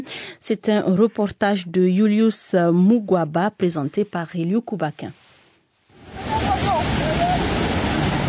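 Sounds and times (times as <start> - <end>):
speech: 0.0 - 5.2
boat moving across calm lake water: 5.9 - 8.2.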